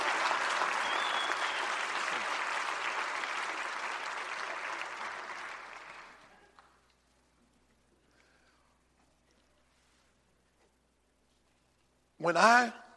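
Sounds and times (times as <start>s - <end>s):
audience applause: 0.0s - 6.8s
speech: 12.2s - 12.8s.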